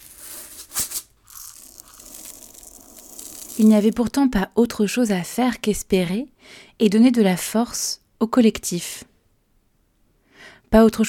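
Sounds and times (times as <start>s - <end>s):
soft rustling chew: 1.2s - 4.0s
teeth cracking crunchy organic pumpkin seeds: 1.2s - 4.1s
speech: 3.6s - 9.1s, 10.7s - 11.0s.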